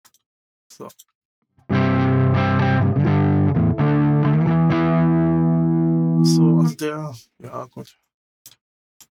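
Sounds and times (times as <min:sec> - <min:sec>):
speech: 0:00.8 - 0:01.2, 0:06.2 - 0:08.6
distorted electric guitar strumming chords through a crunch amp channel with chorus effect: 0:01.7 - 0:06.7.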